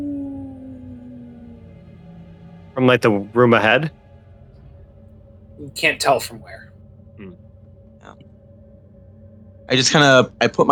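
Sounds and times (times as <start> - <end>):
voice imitating low steady howling wind: 0.0 - 1.7
speech: 2.8 - 4.0, 5.6 - 7.4, 9.7 - 10.7.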